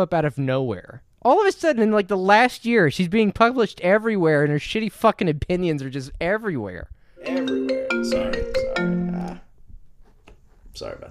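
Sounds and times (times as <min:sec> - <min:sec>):
speech: 0:00.0 - 0:08.9, 0:10.8 - 0:11.0
melodic phone ringtone: 0:07.2 - 0:09.4.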